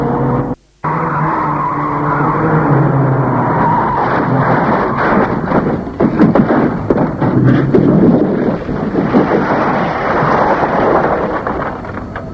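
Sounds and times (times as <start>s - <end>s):
speeding out-of-control car skidding: 0.1s - 12.3s
car crashing into a wall at a dead-end street: 3.3s - 12.3s.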